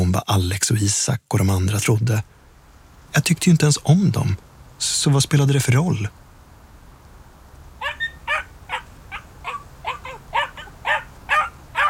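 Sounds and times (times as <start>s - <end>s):
speech: 0.3s - 2.4s, 3.1s - 6.2s
dog barking sharply: 7.8s - 11.8s.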